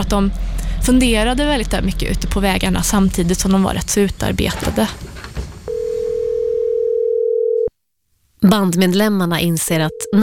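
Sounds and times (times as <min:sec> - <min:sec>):
speech: 0:00.0 - 0:05.2, 0:08.4 - 0:10.2
telephone dial tone: 0:05.7 - 0:07.7.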